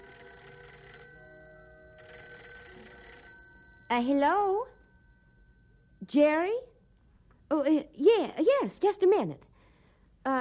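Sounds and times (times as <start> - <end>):
old-fashioned telephone bell ringing at home: 0.0 - 7.4
speech: 3.9 - 4.8, 6.0 - 6.7, 7.5 - 9.5.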